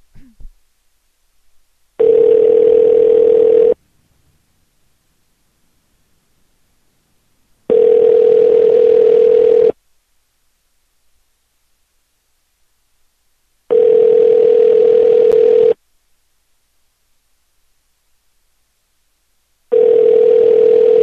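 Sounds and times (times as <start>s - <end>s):
telephone tones while placing a call: 2.0s - 3.8s, 7.7s - 9.8s, 13.7s - 15.8s, 19.7s - 21.0s.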